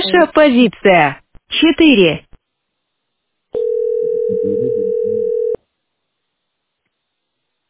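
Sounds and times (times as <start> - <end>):
speech: 0.1 - 2.3
telephone dial tone: 3.6 - 5.6.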